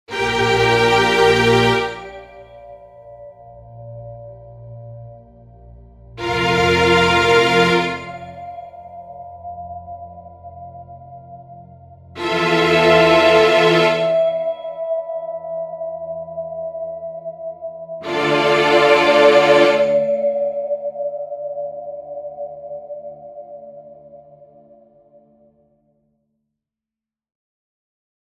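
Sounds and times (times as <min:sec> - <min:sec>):
string ensemble: 0:00.1 - 0:02.6, 0:06.2 - 0:08.7, 0:12.2 - 0:14.7, 0:18.0 - 0:20.6.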